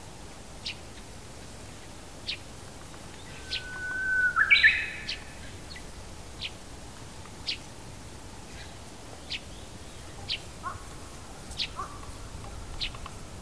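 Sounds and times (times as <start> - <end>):
Japanese bush warbler song: 3.1 - 6.6, 8.5 - 13.4.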